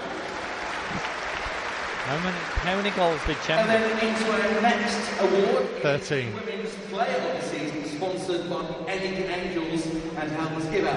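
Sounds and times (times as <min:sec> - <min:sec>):
crowd applauding: 0:00.0 - 0:06.4
speech: 0:02.1 - 0:10.9.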